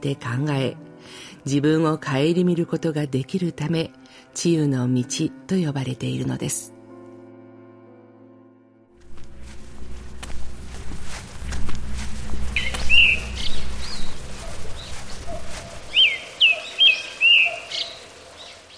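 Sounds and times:
speech: 0.0s - 6.7s
low rumble: 9.0s - 15.8s
crunching footsteps: 9.0s - 16.2s
birds chirping and twittering: 9.3s - 18.7s.

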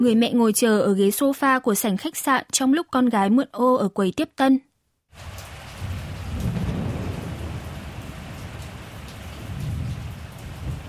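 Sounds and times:
speech: 0.0s - 5.3s
steady rain: 5.1s - 10.8s
deep thunder rumbles: 5.2s - 10.8s.

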